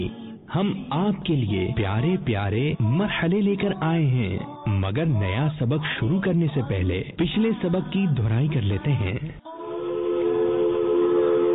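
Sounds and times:
speech: 0.0s - 9.4s
train horn blowing a sustained loud chord: 9.6s - 11.5s.

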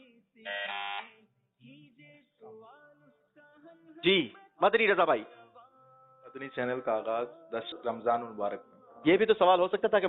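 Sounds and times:
loud brassy quiz show buzzer: 0.5s - 1.2s
speech: 4.0s - 5.4s, 6.3s - 10.0s.

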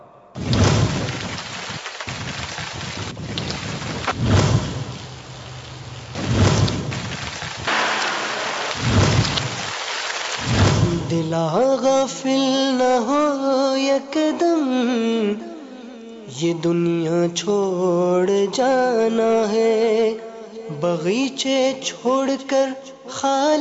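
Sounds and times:
deep thunder rumbling: 0.4s - 11.5s
heavy torrential rain in Lahore: 0.4s - 11.6s
speech: 11.2s - 15.4s, 16.4s - 20.2s, 20.8s - 23.5s.

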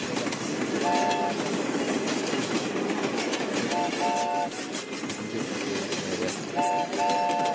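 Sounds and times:
train rumbling along the rails: 0.0s - 7.5s
train horn blasts: 0.8s - 1.4s, 3.7s - 4.6s, 6.6s - 7.5s.

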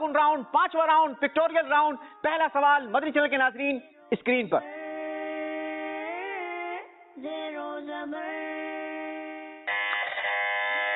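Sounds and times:
speech: 0.1s - 4.8s, 7.2s - 8.6s
electronic quiz-show buzzer pressed by a contestant in the pictorial round: 9.6s - 10.9s.

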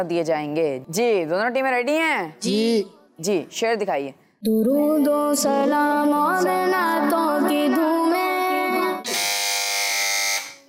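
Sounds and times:
speech: 0.0s - 8.2s
quiz show buzzer pressed by a team: 9.0s - 10.6s.

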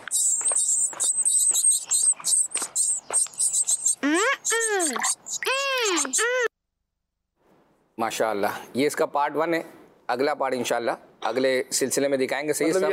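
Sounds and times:
several small birds chirping in a sparrows' nest: 0.0s - 6.5s
speech: 8.0s - 12.9s.

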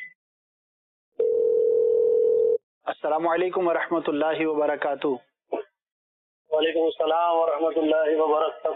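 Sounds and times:
steady telephone line tone: 1.2s - 2.6s
speech: 3.1s - 5.3s, 6.6s - 8.7s.

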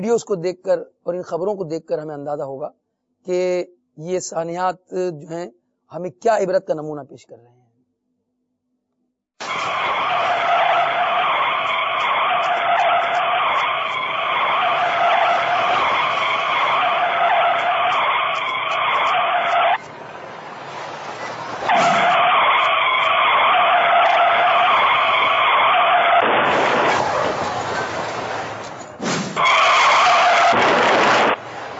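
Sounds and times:
speech: 0.0s - 7.6s
car from behind crashing into cars on a slippery road: 9.4s - 19.8s, 21.5s - 22.8s, 26.0s - 31.7s
car tires screeching on a snowy slippery road: 9.4s - 31.7s.

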